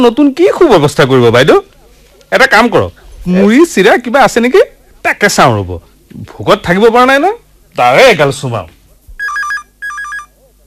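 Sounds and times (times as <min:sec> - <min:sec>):
speech: 0:00.0 - 0:01.7, 0:02.3 - 0:09.4
telephone ringing: 0:09.2 - 0:10.4.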